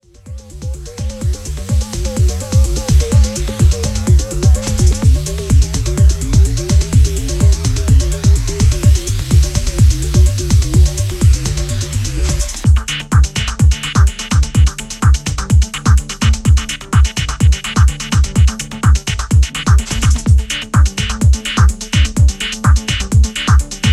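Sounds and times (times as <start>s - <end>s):
methane bass: 0.0s - 23.9s.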